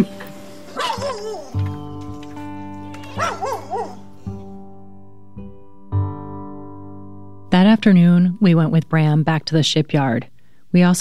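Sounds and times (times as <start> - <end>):
dog yelping and whining barks: 0.3 - 4.5
speech: 7.8 - 11.0.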